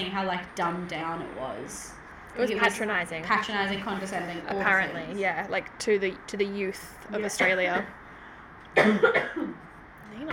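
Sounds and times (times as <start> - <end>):
speech: 0.0 - 8.0, 8.7 - 10.3
harsh rasping cough: 8.8 - 9.7.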